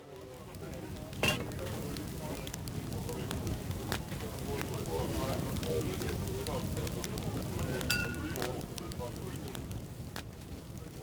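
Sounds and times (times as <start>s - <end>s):
crowd ambience: 0.0s - 11.0s.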